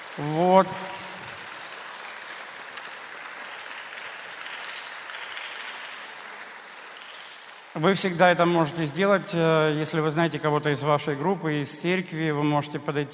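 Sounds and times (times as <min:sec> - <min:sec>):
church congregation applauding: 0:00.0 - 0:08.5
speech: 0:00.2 - 0:01.0, 0:07.8 - 0:13.1.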